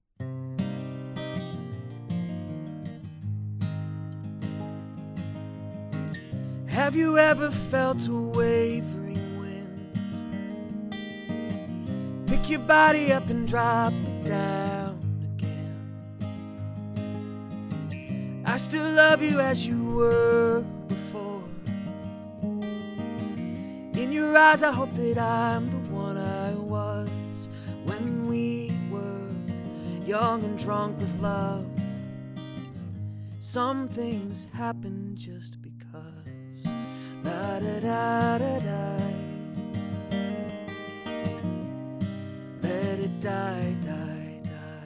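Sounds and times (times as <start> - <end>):
music recorded on a USB microphone: 0.2 - 44.8.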